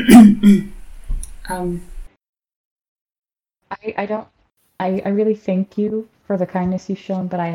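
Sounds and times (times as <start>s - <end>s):
speech: 0.0s - 0.7s, 1.5s - 1.9s, 3.7s - 7.5s
person clearing throat: 0.0s - 0.8s.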